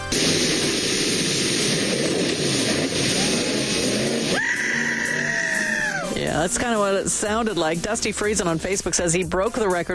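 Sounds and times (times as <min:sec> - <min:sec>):
roar of rushing water: 0:00.1 - 0:06.2
speedboat engine droning and revving: 0:00.2 - 0:06.2
speech: 0:06.4 - 0:09.9.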